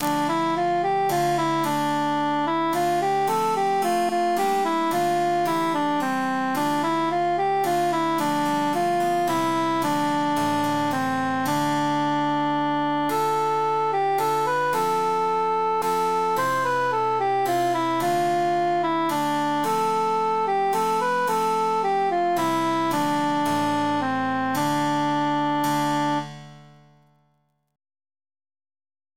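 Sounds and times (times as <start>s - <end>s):
emphasized cantus melody: 0.0s - 27.0s.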